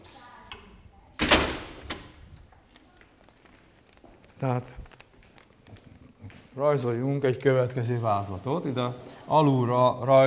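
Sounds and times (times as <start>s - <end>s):
door swinging shut with a solid thud: 1.2s - 2.2s
faint latch-like clicks: 1.2s - 2.2s
speech: 4.4s - 4.9s, 6.6s - 10.2s.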